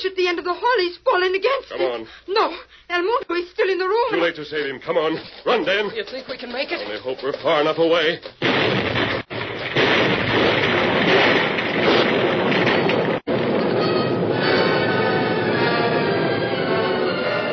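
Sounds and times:
speech: 0.1s - 8.8s
explosion: 8.4s - 17.4s.

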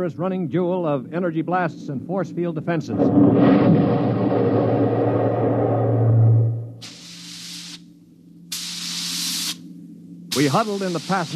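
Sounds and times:
speech: 0.0s - 5.4s, 10.4s - 11.3s
low steady hum: 0.0s - 8.9s, 9.6s - 11.3s
deep loud rumbling roar: 2.9s - 6.9s
bursts of steam through steering tubes: 6.8s - 7.8s, 8.5s - 9.6s, 10.3s - 11.3s.

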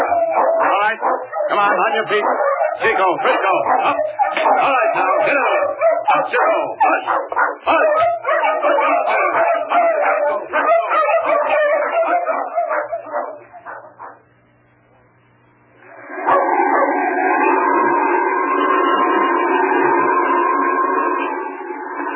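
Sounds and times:
sled dogs howling in chorus: 0.0s - 14.2s, 15.8s - 22.1s
sled dogs barking and yipping: 0.0s - 14.3s, 16.2s - 17.4s
speech: 0.9s - 9.4s.

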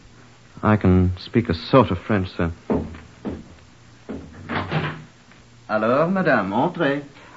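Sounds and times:
speech: 0.6s - 2.7s, 5.7s - 7.3s
door rattling clatter: 2.7s - 5.1s
wooden thuds of a door being opened: 2.7s - 5.1s.

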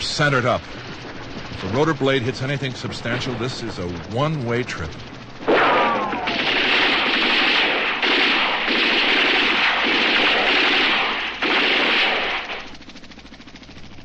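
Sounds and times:
speech: 0.1s - 0.9s, 1.6s - 5.1s
machine gun fire from infantry bunkers spraying the trees during combat: 5.4s - 12.8s.

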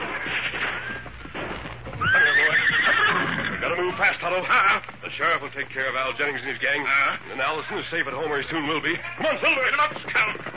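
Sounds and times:
hoofbeats clip-clopping: 0.0s - 10.5s
horse whinnying loudly: 2.0s - 3.9s
speech: 4.0s - 10.4s.

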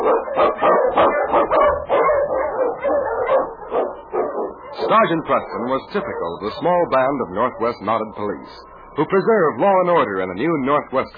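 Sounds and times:
husky sled dogs barking while running a trail through storm and snow: 0.0s - 8.3s
speech: 4.9s - 11.1s.

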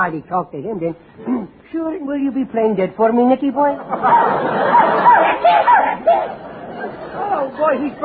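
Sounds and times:
speech: 0.0s - 6.4s, 7.2s - 8.0s
laughter: 3.7s - 8.0s
Irish setter dog barking: 4.1s - 6.4s.

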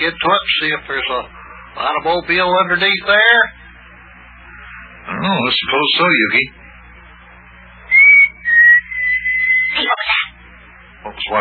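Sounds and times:
speech: 0.0s - 3.6s, 5.0s - 6.6s
person whistling a signal: 7.9s - 9.8s.

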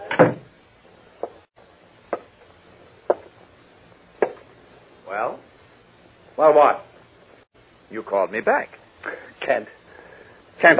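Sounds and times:
door shutting with a solid thud: 0.0s - 0.5s
speech: 6.4s - 6.8s, 7.9s - 9.8s, 10.6s - 10.7s.

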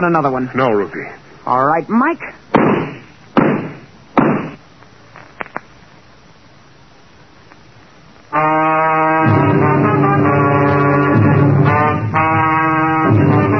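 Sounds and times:
speech: 0.0s - 2.4s
loud gunshots fired through a door: 2.5s - 4.6s
long blaring horn-like chord: 8.4s - 13.5s.

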